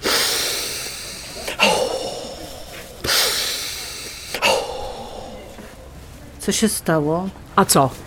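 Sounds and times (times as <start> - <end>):
sharp gasp: 0.0 - 5.9
loud heavy panting with deep rasping breaths: 0.0 - 6.0
speech: 6.4 - 8.0.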